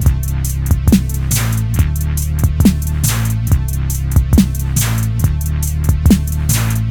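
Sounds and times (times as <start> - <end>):
Roland SBX 1 shuffle beat: 0.0 - 6.8.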